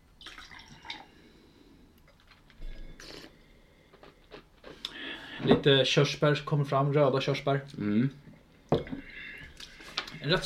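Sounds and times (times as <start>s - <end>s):
water poured out of a wine glass: 0.2s - 1.1s
speech: 5.4s - 8.3s, 10.3s - 10.4s.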